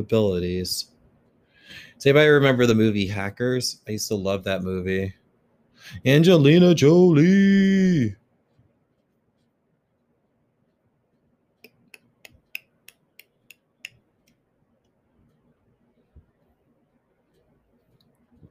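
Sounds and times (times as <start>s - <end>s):
speech: 0.0s - 0.9s, 1.7s - 5.2s, 5.8s - 8.2s
repetitive clicking noise made by a person: 11.6s - 15.0s.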